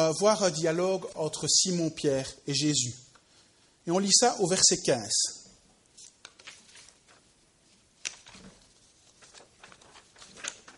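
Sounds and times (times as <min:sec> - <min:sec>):
speech: 0:00.0 - 0:03.1, 0:03.9 - 0:05.4
paper sheets being shuffled: 0:05.9 - 0:10.7.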